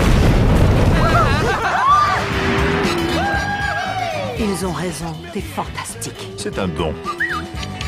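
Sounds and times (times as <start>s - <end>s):
loud deep explosion: 0.0s - 3.3s
laughter: 0.9s - 4.1s
speech: 4.6s - 7.3s.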